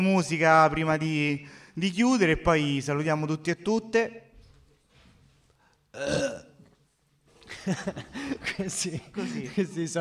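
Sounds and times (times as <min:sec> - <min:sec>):
speech: 0:00.0 - 0:04.2, 0:06.0 - 0:06.5, 0:07.6 - 0:09.9
loud throaty burp: 0:05.9 - 0:06.7
laughter: 0:07.4 - 0:09.9.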